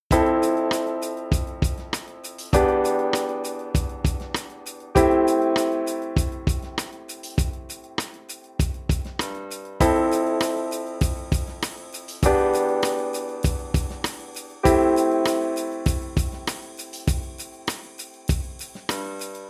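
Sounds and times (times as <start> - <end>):
Fmaj7 Em Am chord progression: 0.1 - 9.2, 9.8 - 19.4.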